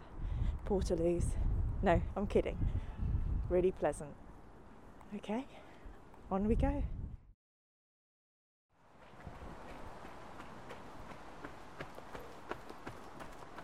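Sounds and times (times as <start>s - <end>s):
steady wind noise: 0.0s - 4.4s, 5.8s - 7.3s, 9.0s - 13.6s
speech: 0.7s - 2.9s, 3.5s - 4.2s, 5.1s - 5.7s, 6.3s - 7.0s
footsteps of runners overtaking on an outdoor route: 8.9s - 13.6s.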